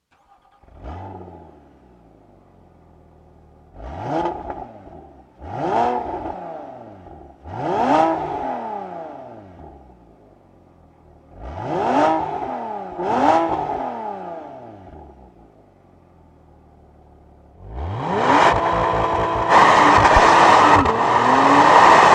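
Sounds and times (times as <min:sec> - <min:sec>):
Porsche Boxster Spyder PDK engine: 0:00.0 - 0:22.1.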